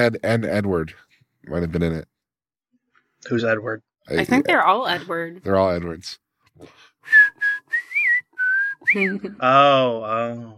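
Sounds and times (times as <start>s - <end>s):
speech: 0.0s - 2.1s, 3.2s - 7.4s, 8.9s - 10.5s
person whistling a bouncy cartoon theme tune: 7.0s - 9.4s
voice singing a drawn-out note: 9.4s - 10.5s.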